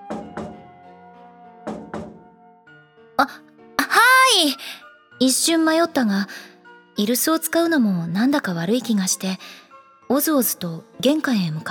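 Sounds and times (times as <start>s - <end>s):
solid double knocks on a door: 0.0s - 0.8s, 1.6s - 2.4s
speech: 3.2s - 3.5s, 4.3s - 11.6s.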